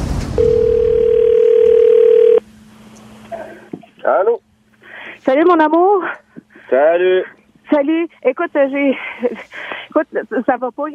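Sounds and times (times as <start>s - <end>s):
telephone dial tone as a call begins: 0.4s - 2.4s
speech: 5.4s - 10.9s.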